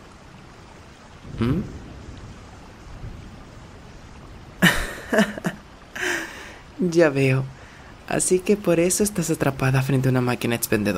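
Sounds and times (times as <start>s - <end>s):
heavy rain hissing: 0.0s - 10.9s
speech: 1.4s - 1.8s, 5.1s - 5.4s, 6.8s - 10.9s.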